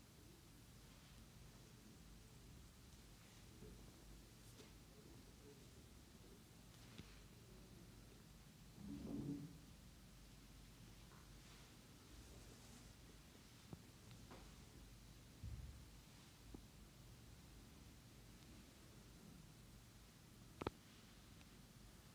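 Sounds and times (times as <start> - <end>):
faint scattered brushes: 0.0 - 19.3
steady low hiss and hum: 0.0 - 22.1
soft rubbing and rustling of head, neck, back and facial massage: 0.5 - 16.8.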